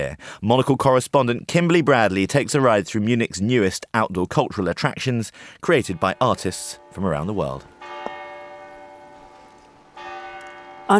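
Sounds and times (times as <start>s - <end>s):
speech: 0.0s - 7.7s
church bells striking noon on a square in Munich: 5.8s - 10.9s.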